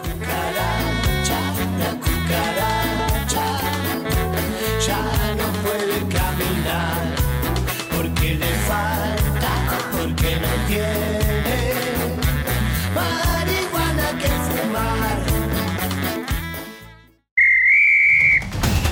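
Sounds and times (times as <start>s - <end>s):
upbeat music: 0.0s - 17.2s
referee's whistle blast: 17.4s - 18.8s.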